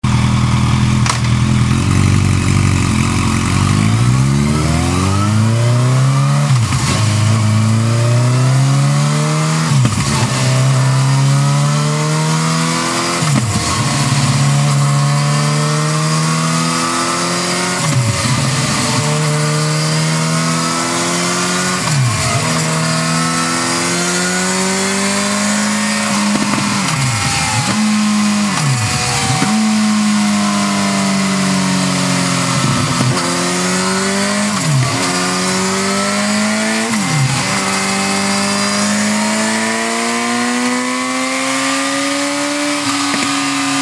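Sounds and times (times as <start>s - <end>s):
Yamaha FZ8 motorcycle engine: 0.0s - 43.8s.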